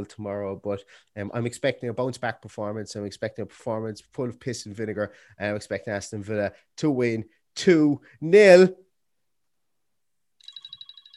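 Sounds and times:
speech: 0.0 - 8.8
electronic timer alarm beeping: 10.4 - 11.1.

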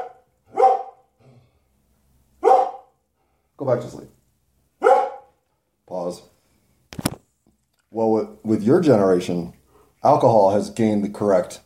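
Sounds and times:
dog barking: 0.0 - 1.1, 2.4 - 3.0, 4.8 - 5.4
speech: 3.6 - 4.2, 6.0 - 6.3, 8.0 - 11.6.

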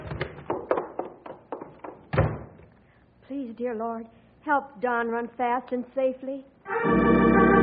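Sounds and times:
wooden thunks and knocks of a door: 0.0 - 2.6
heavier clunk of a door: 2.1 - 2.6
door being opened: 2.1 - 2.7
speech: 3.5 - 7.5.

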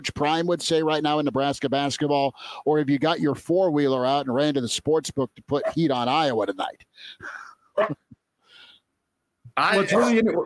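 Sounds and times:
speech: 0.0 - 8.0, 9.6 - 10.4
dog barking: 7.8 - 8.0.

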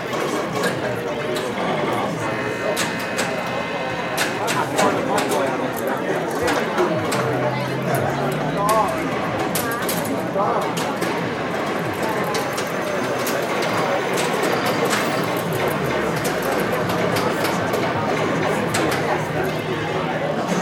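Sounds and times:
crowd chatter in an arcade hall: 0.0 - 20.6
electronic blips and clicks from arcade machines: 12.3 - 18.0.

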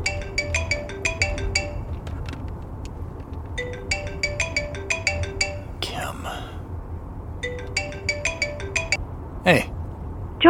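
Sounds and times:
phone ringtone melody: 0.0 - 2.1, 3.6 - 5.8, 7.4 - 9.0
low hum: 0.0 - 10.4
speech: 9.5 - 9.7.

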